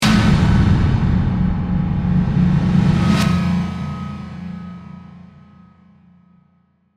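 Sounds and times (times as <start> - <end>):
hit to reverse whoosh with suction and delay: 0.0 - 5.6.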